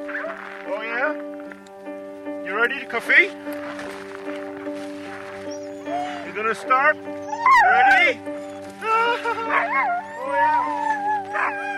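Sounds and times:
team of racing sled dogs howling and yipping in Whitehorse Yukon Canada: 0.0s - 0.5s, 5.4s - 6.5s, 7.1s - 11.7s
racing sled dogs barking excitedly: 0.0s - 0.6s, 5.3s - 11.7s
speech: 2.6s - 3.9s, 6.4s - 8.4s, 9.0s - 11.6s.

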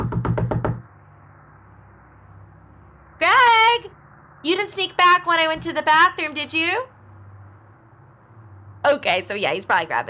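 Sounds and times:
knocking on a hotel room door: 0.0s - 0.8s
faint room hum: 0.0s - 10.0s
speech: 4.4s - 6.9s, 8.9s - 10.0s.

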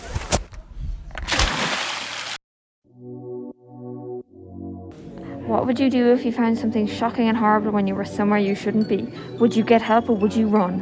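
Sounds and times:
splash of a boy falling into the sea: 1.2s - 2.4s
speech: 5.5s - 10.7s.

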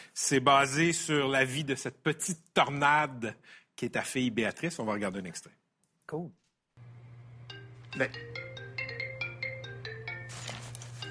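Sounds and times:
speech: 0.2s - 6.4s, 8.0s - 8.4s
low steady hum: 6.8s - 8.8s
telephone ringing with melodic electronic ringtone: 7.4s - 11.0s
burst of rustling noise: 10.3s - 11.0s.

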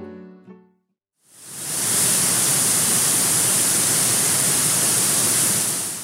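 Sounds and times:
giant waterfall rushing in a canyon at a national preserve in Alabama: 1.4s - 6.0s.

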